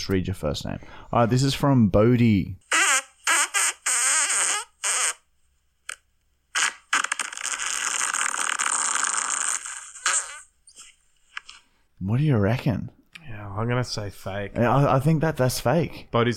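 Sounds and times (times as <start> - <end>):
speech: 0.0 - 2.7, 12.0 - 16.3
farts: 2.7 - 5.2, 6.5 - 10.5.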